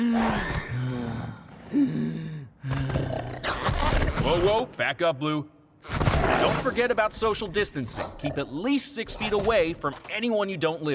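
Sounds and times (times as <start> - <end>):
labored gasping breaths imitating breathing trouble: 0.0 - 3.6
speech: 1.7 - 3.2, 4.2 - 5.6, 6.2 - 10.9.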